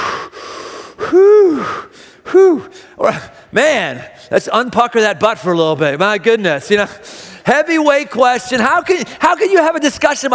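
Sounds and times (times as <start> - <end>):
loud voiced gasps: 0.0 - 3.5
person taking deep breaths: 0.0 - 3.5, 7.0 - 7.4
soft breathy noise: 0.0 - 3.5
speech: 2.4 - 10.3.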